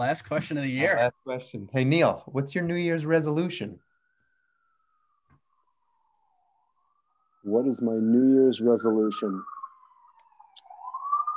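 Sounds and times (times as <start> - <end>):
speech: 0.0 - 3.8, 7.4 - 9.5
police car siren wailing outside: 2.4 - 11.3.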